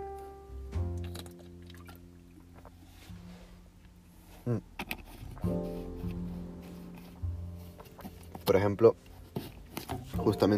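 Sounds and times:
person taking a sip of water: 0.9 - 8.5
speech: 4.5 - 5.6, 8.5 - 9.1, 10.2 - 10.5.

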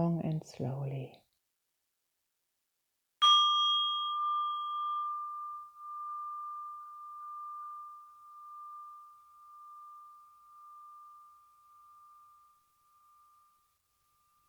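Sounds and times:
speech: 0.0 - 1.3
bell rung once, ringing out: 3.2 - 7.7.

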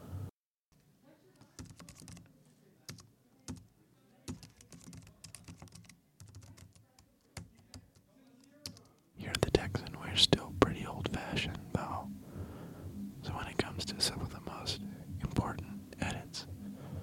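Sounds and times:
faint room hum: 0.0 - 17.0
typing on a computer keyboard: 1.4 - 2.3, 2.9 - 9.0.

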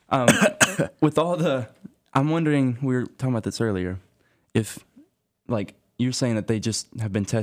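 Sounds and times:
speech: 0.1 - 4.9, 5.5 - 7.4
audience members coughing: 0.2 - 1.0.

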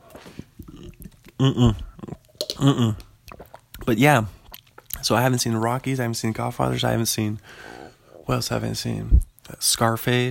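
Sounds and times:
slurping drink from a water bottle: 0.0 - 3.8
loud throaty gulps: 0.0 - 5.0
speech: 1.4 - 1.9, 2.6 - 3.0, 3.9 - 4.4, 5.0 - 10.3.

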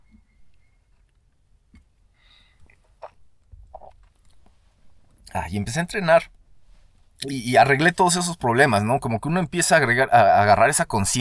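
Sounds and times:
person sipping hot coffee: 2.5 - 4.4
small mouth clicks: 2.6 - 4.4
soft slurps and swallows: 2.6 - 4.5
speech: 5.4 - 6.4, 7.2 - 11.1.

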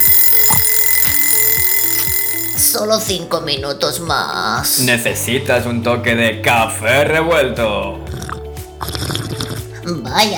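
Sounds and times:
alarm clock ringing: 0.0 - 3.0
speech: 2.8 - 8.1, 9.9 - 10.3.

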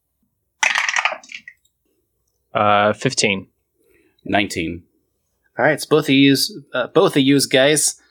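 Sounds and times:
dice clattering across a hard surface: 0.6 - 1.6
speech: 2.5 - 3.5, 4.3 - 4.9, 5.6 - 8.0.

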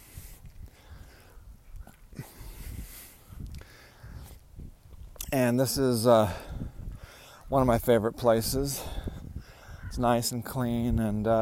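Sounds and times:
heavy labored breathing of person walking uphill: 0.0 - 4.5, 6.2 - 7.5, 8.7 - 9.9
faint outdoor rustling: 0.0 - 11.4
speech: 5.4 - 6.5, 7.5 - 9.0, 10.0 - 11.4.

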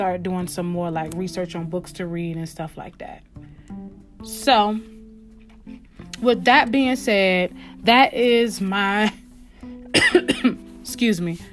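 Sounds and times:
speech: 0.0 - 3.5, 4.2 - 5.0, 5.7 - 9.2, 10.0 - 11.5
person coughing from allergies and a lingering cold: 9.9 - 10.6.

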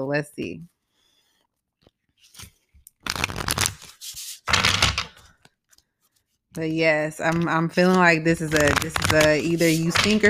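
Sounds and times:
speech: 0.0 - 0.8, 6.6 - 10.2
oracle cards being shuffled: 2.1 - 6.3, 7.2 - 10.2.

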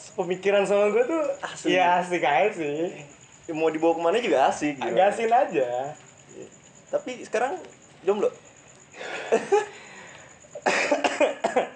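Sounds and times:
speech: 0.2 - 8.4, 9.0 - 9.8
person coughing in raspy harsh bouts: 10.6 - 11.7.

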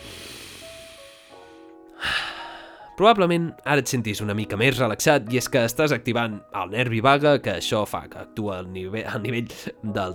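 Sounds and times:
deep breath in and out: 0.0 - 3.0
speech: 3.0 - 10.1.

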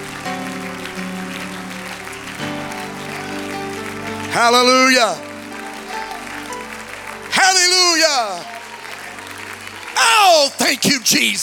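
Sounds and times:
audience clapping in a large church: 0.0 - 11.4
speech: 4.4 - 5.3, 10.0 - 11.4.

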